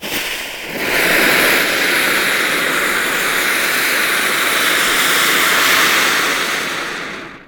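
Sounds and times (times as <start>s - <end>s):
bomb fuse being lit and burning: 0.0s - 7.4s.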